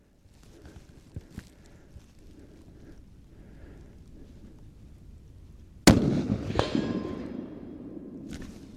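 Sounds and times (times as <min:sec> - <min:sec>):
faint rustling: 0:00.0 - 0:05.8
wind: 0:00.0 - 0:08.7
single rifle shot fired from a hilltop at a ballistic-gel head: 0:05.8 - 0:08.3.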